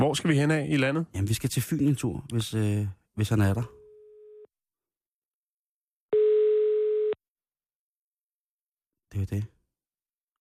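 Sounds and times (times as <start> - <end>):
speech: 0.0 - 3.8, 9.2 - 9.6
telephone ringing tone while calling a friend: 6.1 - 7.2.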